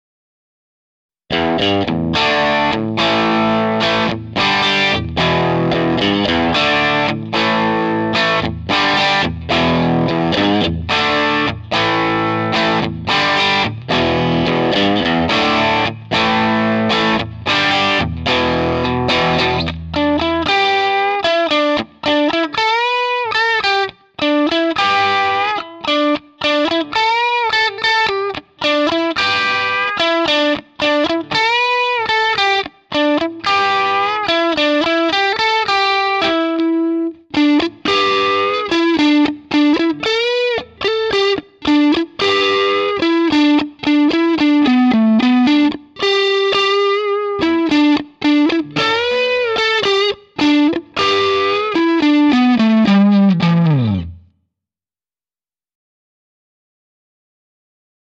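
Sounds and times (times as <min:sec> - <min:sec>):
Strat electric guitar on humbucker treble through DigiTech RP70 and Marshall JCM800: 0:01.3 - 0:54.3.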